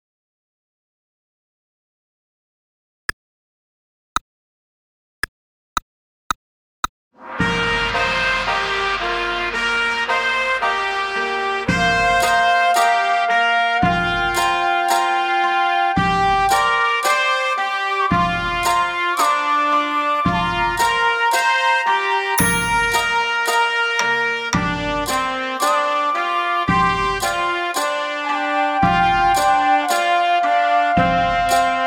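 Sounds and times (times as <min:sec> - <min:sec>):
trumpet playing a Chinese melody: 0:07.2 - 0:31.8.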